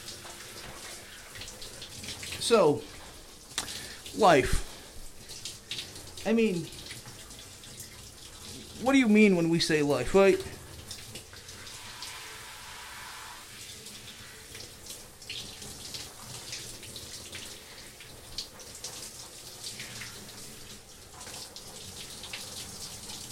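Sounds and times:
running water wetting hair: 0:00.0 - 0:23.3
speech: 0:02.5 - 0:03.0, 0:04.2 - 0:04.7, 0:06.2 - 0:06.8, 0:08.8 - 0:10.5.

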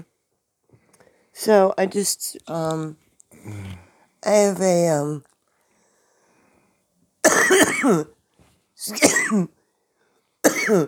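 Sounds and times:
speech: 0:01.4 - 0:05.3, 0:07.6 - 0:08.2, 0:08.8 - 0:09.6, 0:10.7 - 0:10.8
person coughing harshly: 0:03.5 - 0:03.8, 0:07.3 - 0:08.1, 0:09.0 - 0:09.5, 0:10.5 - 0:10.8.

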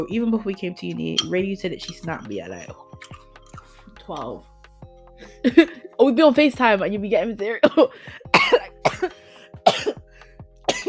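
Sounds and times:
speech: 0:00.0 - 0:03.2, 0:04.0 - 0:04.5, 0:05.2 - 0:09.2
person coughing: 0:07.6 - 0:10.0, 0:10.7 - 0:10.8.

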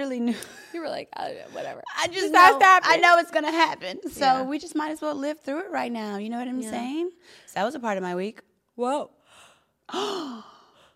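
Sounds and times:
speech: 0:00.0 - 0:09.2, 0:09.9 - 0:10.5
person yawning: 0:09.9 - 0:10.8.

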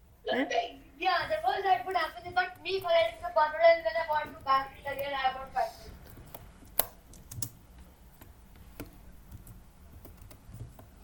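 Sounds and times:
speech: 0:00.4 - 0:05.8
typing on a computer keyboard: 0:06.1 - 0:07.6, 0:08.2 - 0:11.0.

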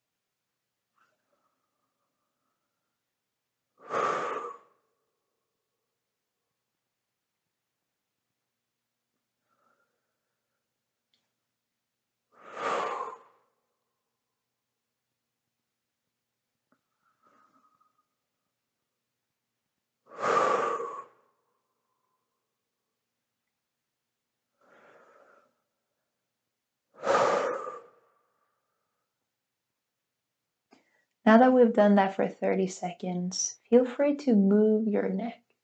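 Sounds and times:
slow deep breathing: 0:03.8 - 0:04.9, 0:09.4 - 0:10.8, 0:12.3 - 0:13.6, 0:16.8 - 0:18.2, 0:20.1 - 0:22.2, 0:24.5 - 0:25.8, 0:27.0 - 0:29.0
speech: 0:31.2 - 0:35.4.

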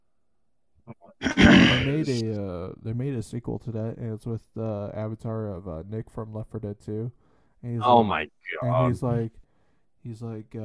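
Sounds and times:
person growling low grunts: 0:01.2 - 0:02.2
person roaring imitating an ogre: 0:01.2 - 0:02.2, 0:07.8 - 0:08.9
speech: 0:01.9 - 0:09.4, 0:10.0 - 0:10.6.

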